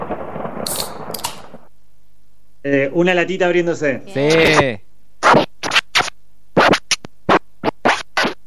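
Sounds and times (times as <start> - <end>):
speech: 2.6 - 4.8
vinyl record scratched back and forth on a turntable: 4.1 - 8.4.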